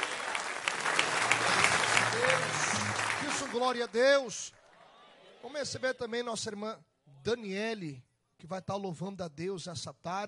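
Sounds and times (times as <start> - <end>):
applause from a church worship gathering: 0.0 - 4.7
speech: 3.6 - 4.6, 5.4 - 10.2.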